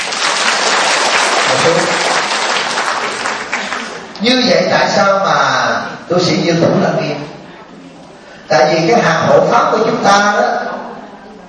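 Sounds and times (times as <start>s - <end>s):
audience applause at a Buddhist dharma talk: 0.0s - 4.2s
speech: 4.2s - 7.3s, 8.5s - 10.8s.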